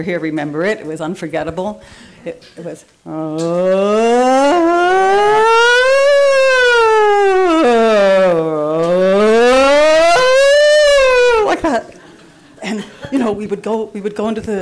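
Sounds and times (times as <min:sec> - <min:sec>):
speech: 0:00.0 - 0:05.4, 0:13.3 - 0:14.6
warning siren wailing with rising and falling pitch: 0:03.2 - 0:11.7.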